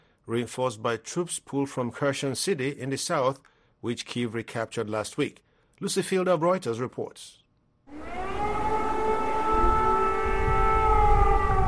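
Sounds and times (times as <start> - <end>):
speech: 0.3 - 8.1
air raid sirens wailing in Kyiv Ukraine as the first snows fall: 7.9 - 11.6.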